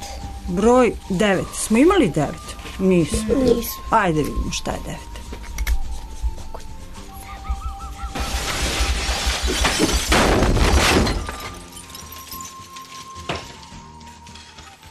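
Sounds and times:
speech: 0:00.5 - 0:05.1
glass breaking with great force: 0:08.2 - 0:14.8
glass pieces clinking as they settle: 0:08.3 - 0:14.8.

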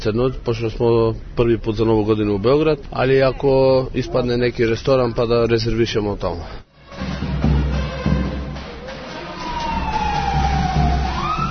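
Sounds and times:
speech: 0:00.0 - 0:07.1
constant low traffic rumble: 0:00.0 - 0:11.5
emergency vehicle siren wailing through the streets of Belgrade on New Year's Eve: 0:07.8 - 0:11.5.

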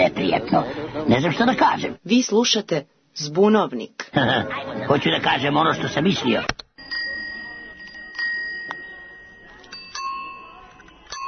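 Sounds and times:
speech: 0:00.0 - 0:06.6
small classic-style bell ringing: 0:06.8 - 0:11.2.

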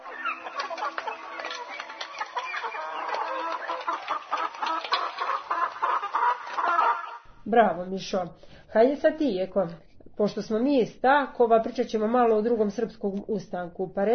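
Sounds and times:
several hens clucking and squawking: 0:00.0 - 0:07.3
speech: 0:07.5 - 0:14.1.

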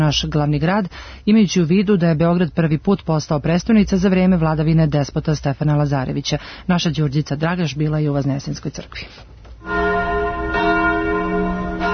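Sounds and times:
speech: 0:00.1 - 0:09.8
church bells ringing at a church in Belgrade during a ceremony: 0:09.6 - 0:11.9.

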